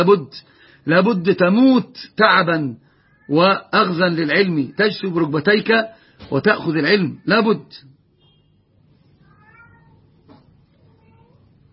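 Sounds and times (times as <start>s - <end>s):
speech: 0.0s - 8.0s
cat meowing in a home with many cats: 3.0s - 3.4s, 9.2s - 10.2s, 10.8s - 11.6s.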